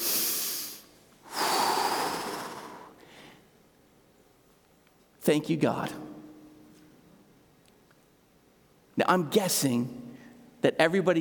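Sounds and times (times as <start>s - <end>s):
church congregation taking a deep breath together: 0.0s - 3.5s
speech: 5.2s - 6.0s, 9.1s - 10.0s, 10.6s - 11.1s.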